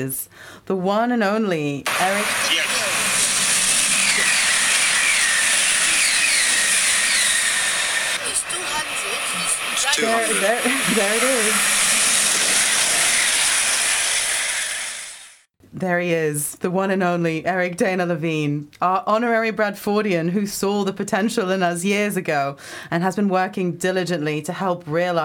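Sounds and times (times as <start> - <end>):
speech: 0.0 - 2.7, 10.0 - 11.8, 15.8 - 25.2
steam hiss: 1.9 - 15.5.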